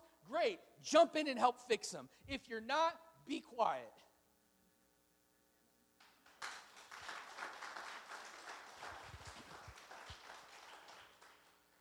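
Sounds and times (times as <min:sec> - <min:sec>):
speech: 0:00.3 - 0:04.1
soft scattered applause from an audience: 0:06.0 - 0:11.8.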